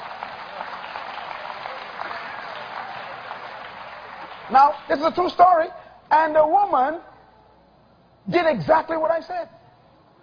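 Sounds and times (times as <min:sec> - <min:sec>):
audience clapping: 0:00.0 - 0:05.4
speech: 0:04.5 - 0:07.1, 0:08.2 - 0:09.6.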